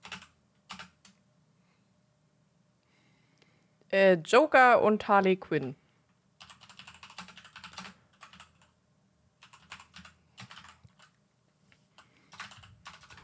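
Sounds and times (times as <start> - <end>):
typing on a computer keyboard: 0.0 - 1.2, 6.4 - 8.8, 9.4 - 11.2, 11.9 - 13.2
speech: 3.9 - 5.8.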